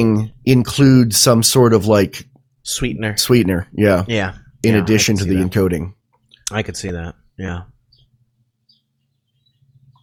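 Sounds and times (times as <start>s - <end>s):
speech: 0.0s - 7.7s
faint bird chirps outdoors in Utah through an open window: 7.8s - 10.0s.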